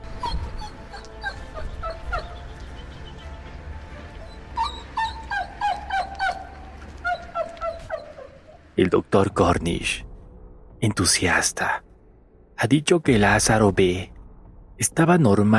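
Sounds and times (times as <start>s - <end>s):
dog whimpering and yelping: 0.1s - 2.4s, 4.0s - 8.7s
speech: 8.8s - 10.1s, 10.8s - 11.8s, 12.6s - 14.1s, 14.8s - 15.5s.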